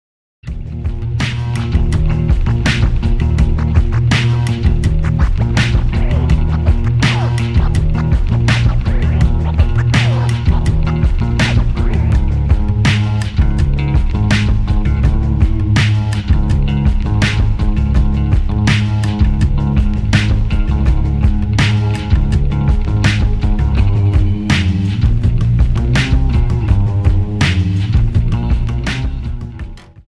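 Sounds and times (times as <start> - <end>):
double bass: 0.5 - 30.0.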